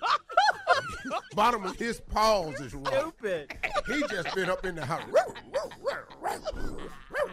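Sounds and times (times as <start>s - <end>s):
laughter: 0.0s - 7.3s
speech: 1.4s - 5.4s
dog barking: 5.1s - 7.3s.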